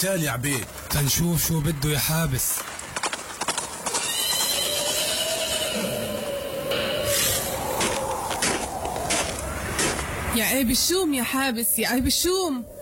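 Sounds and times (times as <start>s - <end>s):
speech: 0.0s - 2.8s, 10.4s - 12.8s
horse hooves clip-clopping: 0.0s - 5.8s, 7.6s - 10.1s
horse whinnying: 3.8s - 7.5s.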